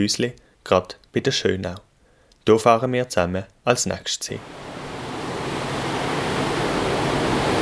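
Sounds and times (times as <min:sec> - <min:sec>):
speech: 0:00.0 - 0:04.7
drinking water rushing out of reservoir pipe: 0:04.4 - 0:07.6.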